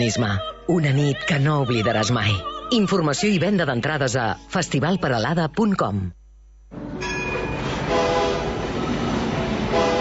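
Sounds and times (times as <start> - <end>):
speech: 0.0 - 6.2
rack railway train going up to the Vall de Núria rumbling: 7.0 - 9.9
rack railway train horn sounding in sustained tonal blasts: 7.6 - 9.9.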